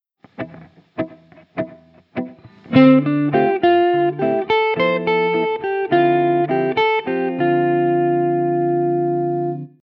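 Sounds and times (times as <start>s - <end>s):
guitar playing in Dorian mode: 0.2s - 9.8s.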